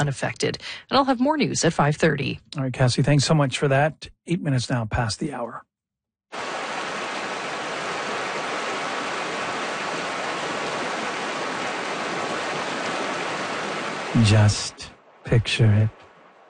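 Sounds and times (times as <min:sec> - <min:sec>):
speech: 0:00.0 - 0:05.7, 0:14.2 - 0:16.0
water flowing in a small river: 0:06.3 - 0:15.3, 0:16.0 - 0:16.4.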